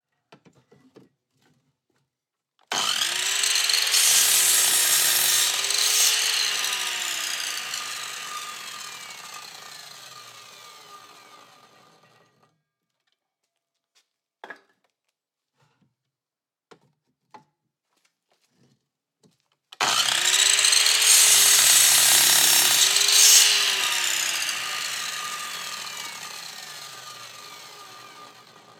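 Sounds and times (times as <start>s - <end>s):
circular saw: 2.7s - 12.1s, 19.8s - 28.7s.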